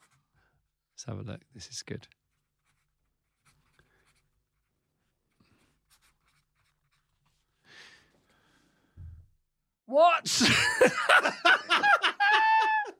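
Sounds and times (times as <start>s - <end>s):
pen scratching across paper as a name is written: 0.0s - 0.2s, 2.3s - 7.5s
speech: 1.0s - 2.2s, 9.9s - 11.6s
low thump: 9.0s - 9.4s
laughter: 10.3s - 12.9s.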